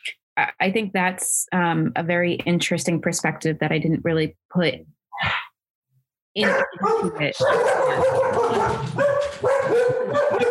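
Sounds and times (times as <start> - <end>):
speech: 0.4 - 5.4, 6.4 - 10.4
English Springer Spaniels barking and yelping: 6.4 - 10.4.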